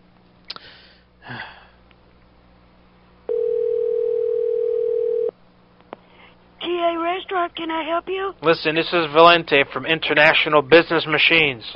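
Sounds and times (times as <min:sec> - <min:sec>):
person sniffing: 0:00.5 - 0:01.8
telephone tone on a call to a restaurant extension: 0:03.3 - 0:05.3
speech: 0:07.4 - 0:11.7.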